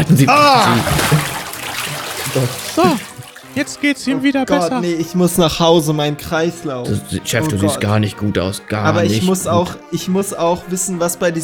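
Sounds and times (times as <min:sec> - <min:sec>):
speech: 0:00.1 - 0:01.2, 0:02.3 - 0:11.4
bucket of water poured over head: 0:00.4 - 0:03.8
laughter: 0:02.3 - 0:03.2.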